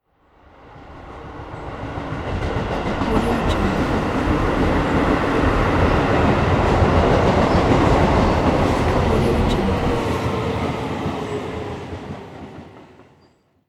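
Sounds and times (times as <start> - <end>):
metro subway train passing by: 0.3 - 13.4.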